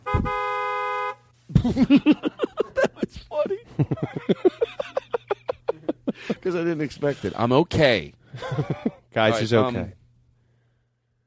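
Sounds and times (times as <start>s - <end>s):
car horn blast: 0.0s - 1.3s
laughter: 1.5s - 7.3s, 8.3s - 9.1s
speech: 1.6s - 2.3s, 6.5s - 10.0s.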